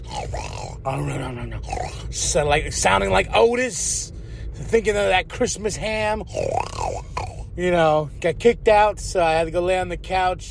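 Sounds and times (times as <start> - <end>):
man's voice imitating loud snoring: 0.0 - 2.3, 6.2 - 7.5
speech: 0.8 - 10.5.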